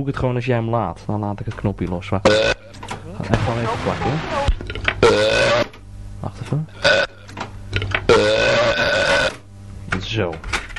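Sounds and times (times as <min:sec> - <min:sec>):
speech: 0:00.0 - 0:02.5, 0:03.2 - 0:05.6, 0:06.5 - 0:07.0, 0:10.2 - 0:10.5
long loud burp: 0:02.2 - 0:02.7, 0:05.0 - 0:05.8, 0:06.8 - 0:07.3, 0:08.1 - 0:09.4.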